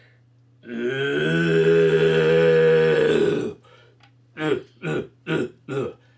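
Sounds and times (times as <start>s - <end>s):
person imitating a red stag roar with their voice: 0.7s - 3.6s.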